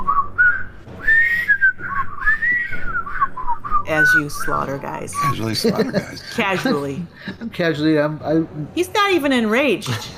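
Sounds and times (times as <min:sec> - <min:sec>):
person whistling a TV theme tune: 0:00.0 - 0:05.6
speech: 0:03.9 - 0:10.1
laughter: 0:05.4 - 0:07.5.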